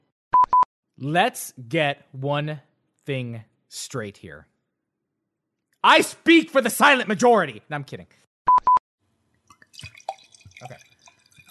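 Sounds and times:
speech: 1.0s - 4.5s, 5.8s - 8.2s, 10.6s - 10.9s
wine pouring in uneven glugs and drips: 9.4s - 11.4s
sharp bright clink: 9.8s - 11.4s.

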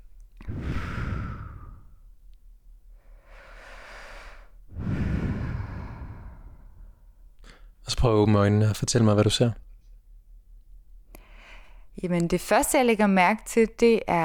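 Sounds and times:
deep breaths during a relaxation exercise: 0.4s - 2.2s, 2.9s - 7.8s, 11.1s - 12.0s
speech: 8.0s - 9.7s, 12.0s - 14.2s.

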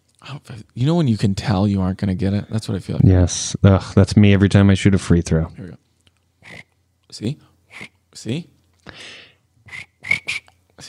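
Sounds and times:
speech: 0.3s - 5.8s, 6.4s - 9.9s
person imitating cricket chirps: 6.4s - 6.7s, 7.7s - 8.0s, 9.7s - 10.5s.

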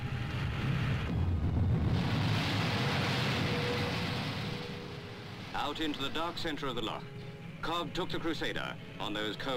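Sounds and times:
speedboat jet engine roaring with whine: 0.0s - 6.9s
speech: 5.6s - 9.5s.

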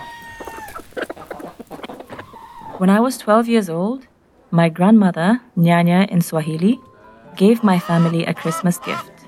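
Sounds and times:
chickens clucking: 0.0s - 3.1s, 6.8s - 9.2s
speech: 2.8s - 9.1s.

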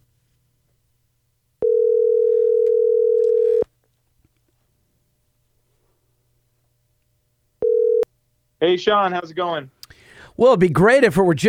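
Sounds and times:
telephone ringing tone on a call: 1.6s - 3.7s, 7.6s - 8.1s
speech: 8.6s - 9.8s, 10.4s - 11.4s.

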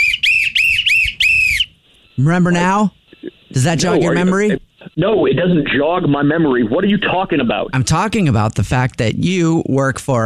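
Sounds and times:
loud whistling in rising and falling notes: 0.0s - 1.8s
speech: 2.2s - 10.2s.

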